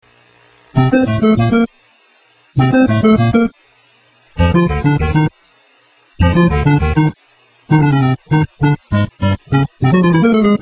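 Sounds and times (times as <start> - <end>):
video game ringtone: 0.8 - 1.7, 2.6 - 3.5, 4.4 - 5.3, 6.2 - 10.6.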